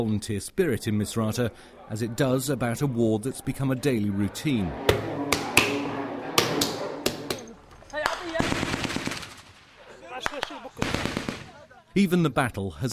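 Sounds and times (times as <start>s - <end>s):
speech: 0.0s - 5.2s, 12.0s - 12.9s
gunfire from rebel fighters on a front line in Misrata: 4.9s - 7.4s, 8.0s - 11.6s.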